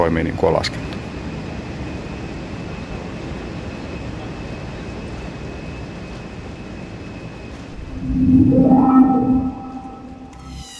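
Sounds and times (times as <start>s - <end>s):
speech: 0.1s - 0.9s
airplane engine revving and taking off from a runway: 7.5s - 10.5s.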